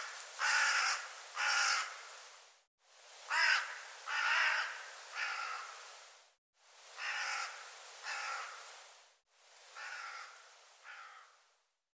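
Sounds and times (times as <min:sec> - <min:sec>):
bird calls in harsh caws: 0:00.0 - 0:02.1, 0:03.3 - 0:05.8, 0:07.0 - 0:08.7, 0:09.8 - 0:11.5.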